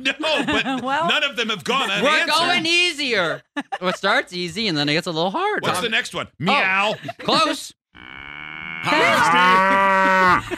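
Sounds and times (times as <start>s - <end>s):
laughter: 0.0s - 4.2s, 6.6s - 7.7s, 8.8s - 10.5s
speech: 0.0s - 10.5s
cow mooing: 8.0s - 10.4s.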